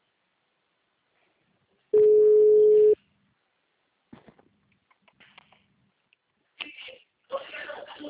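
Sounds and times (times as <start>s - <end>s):
telephone ringing tone while placing a call: 2.0s - 3.0s
faint clicks and rustles: 4.1s - 6.7s.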